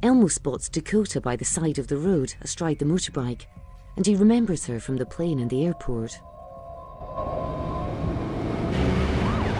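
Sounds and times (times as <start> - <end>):
speech: 0.0 - 6.3
police car sirens passing on a road: 7.2 - 9.5.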